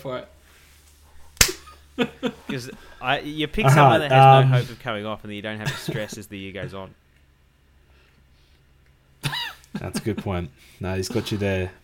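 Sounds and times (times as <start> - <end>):
speech: 0.0 - 0.4, 2.0 - 7.0, 9.8 - 11.8
sharp slap: 1.4 - 1.7.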